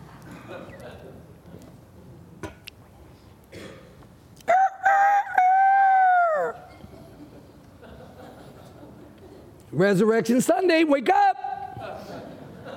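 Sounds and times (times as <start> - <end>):
laughter: 0.3 - 1.3, 6.9 - 9.5, 11.8 - 12.7
rooster crowing: 4.5 - 6.7
speech: 9.8 - 11.4.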